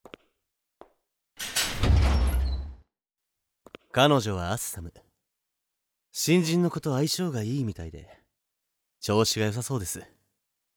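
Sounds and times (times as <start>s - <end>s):
tool room door opening with a rough rumbling scrape: 1.4s - 2.8s
speech: 3.9s - 5.0s, 6.2s - 8.2s, 9.0s - 10.2s.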